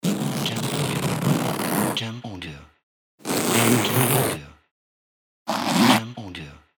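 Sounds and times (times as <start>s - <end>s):
wide thick zipper: 0.0s - 2.0s, 3.2s - 4.4s, 5.5s - 6.1s.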